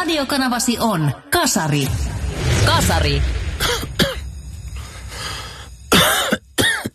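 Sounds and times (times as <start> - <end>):
speech: 0.1 - 4.1
harsh chesty coughing: 3.6 - 4.3, 5.9 - 6.9.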